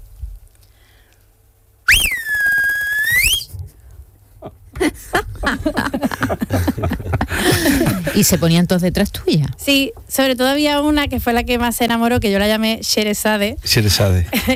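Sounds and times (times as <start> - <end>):
shepherd whistling to call sheep: 1.9 - 3.5
laughter: 4.4 - 8.5, 14.3 - 14.5
speech: 8.2 - 14.5.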